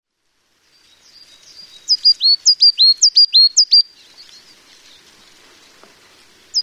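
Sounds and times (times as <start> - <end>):
Coal tit singing high see-saw phrases: 0.9 - 5.9, 6.5 - 6.6.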